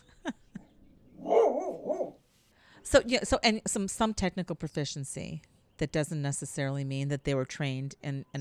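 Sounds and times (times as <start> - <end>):
dog barking: 1.2 - 2.2
speech: 2.8 - 8.3.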